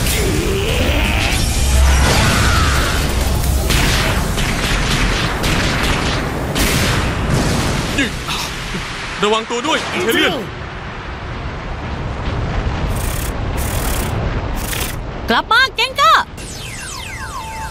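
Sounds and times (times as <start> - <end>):
spirit fireball attack whooshing and exploding in an animated battle: 0.0 - 15.4
speech: 9.2 - 10.6, 15.3 - 15.9.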